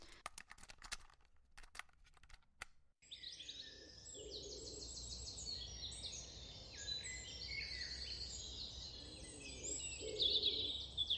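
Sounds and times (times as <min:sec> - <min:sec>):
sharp clicks: 0:00.0 - 0:02.8
recorded dawn chorus of chirping birds: 0:03.1 - 0:11.1
low wood pigeon coos on a recording: 0:04.1 - 0:04.8, 0:08.9 - 0:10.8.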